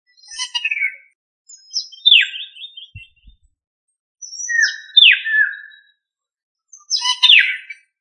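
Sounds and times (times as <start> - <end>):
bird song of scratchy descending notes and slurred whistles: 0.1 - 3.5, 4.2 - 6.0, 6.7 - 7.9
faint low thumps: 3.0 - 3.5.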